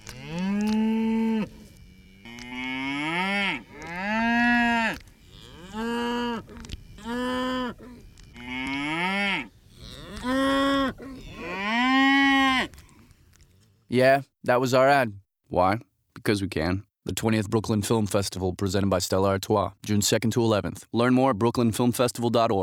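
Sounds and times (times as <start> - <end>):
cow mooing while giving birth: 0.0 - 12.8
speech: 14.0 - 22.6.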